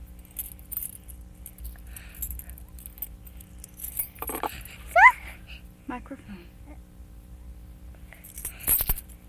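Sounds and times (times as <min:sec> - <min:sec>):
keys jingling and clinking: 0:00.0 - 0:04.9, 0:08.2 - 0:09.2
low steady rumble: 0:00.0 - 0:09.2.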